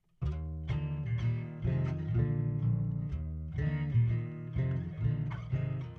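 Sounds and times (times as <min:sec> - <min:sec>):
acoustic guitar pitched 6 semitones down: 0:00.2 - 0:05.9.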